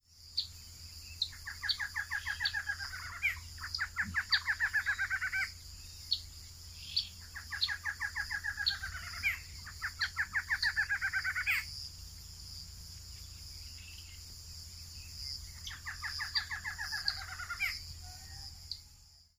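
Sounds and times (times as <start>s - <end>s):
Thamnophilus doliatus: 0.4s - 14.3s, 14.9s - 19.0s.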